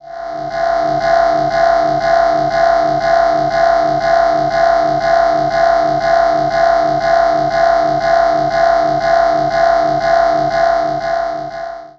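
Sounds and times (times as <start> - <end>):
alien spacecraft alarm: 0.0 - 11.9.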